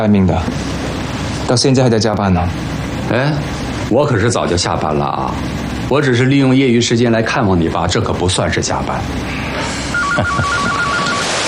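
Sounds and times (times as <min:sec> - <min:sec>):
speech: 0:00.0 - 0:00.7, 0:01.5 - 0:10.8
telephone ringing with electronic beeps: 0:09.9 - 0:11.4.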